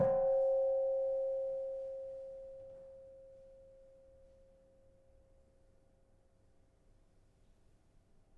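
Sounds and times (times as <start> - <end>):
soft kenong gong of a gamelan: 0.0 - 4.2.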